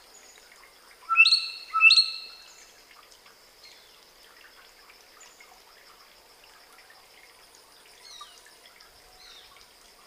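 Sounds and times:
common hill myna Gracula religiosa loud rich whistled calls: 0:01.1 - 0:02.4.

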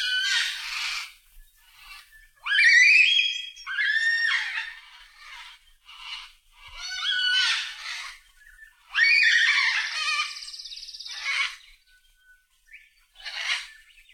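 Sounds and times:
yellow-tailed black cockatoos giving harsh wailing screeches: 0:00.0 - 0:08.2, 0:08.9 - 0:11.6.

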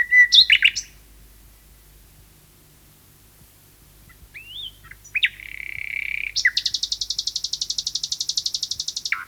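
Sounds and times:
common nightingale singing: 0:00.0 - 0:01.0, 0:04.1 - 0:09.2.

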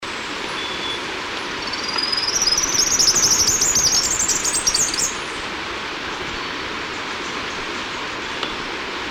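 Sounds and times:
steady background hiss: 0:00.0 - 0:09.0
three-striped warbler Basileuterus tristriatus chattering: 0:01.6 - 0:05.4.

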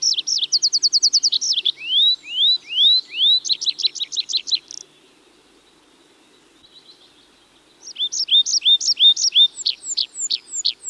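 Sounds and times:
tree pipit Anthus trivialis song: 0:00.0 - 0:10.8.

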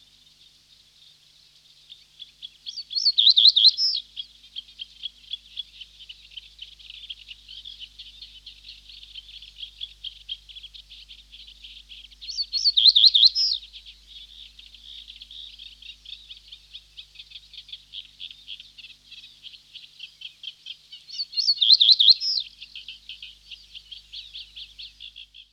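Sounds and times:
Reed Bunting Emberiza schoeniclus song: 0:00.0 - 0:25.5
faint twittering and ticking: 0:00.0 - 0:25.5.

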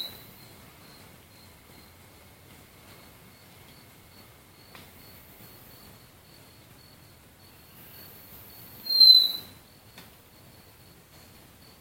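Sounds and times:
background hiss: 0:00.0 - 0:11.8
hooded antpitta Grallaricula cucullata thin high whistle: 0:08.8 - 0:09.6.

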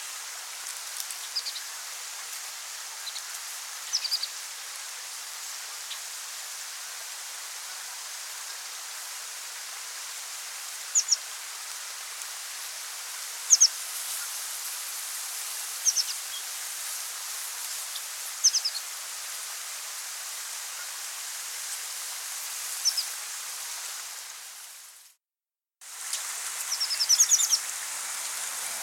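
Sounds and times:
steady hissing background noise: 0:00.0 - 0:25.2, 0:25.8 - 0:28.8
buff-bellied pipit Anthus rubescens calls: 0:10.9 - 0:11.2, 0:13.5 - 0:13.7, 0:18.4 - 0:18.8, 0:26.7 - 0:27.6.

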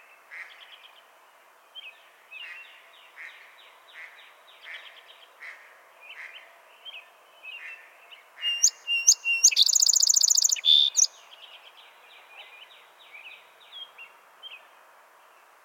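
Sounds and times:
Song sparrow singing: 0:06.8 - 0:14.7.

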